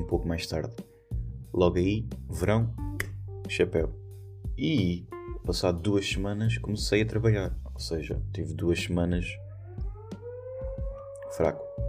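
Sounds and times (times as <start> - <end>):
speech: 0.0 - 0.9, 1.5 - 2.8, 3.5 - 9.4, 11.3 - 11.8
noon siren wailing at a distance: 9.2 - 11.8.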